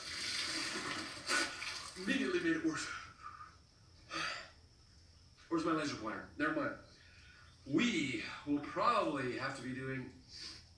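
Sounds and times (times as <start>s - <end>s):
water running from a tap: 0.0s - 2.2s
speech: 2.0s - 3.1s, 5.5s - 6.9s, 7.6s - 10.5s.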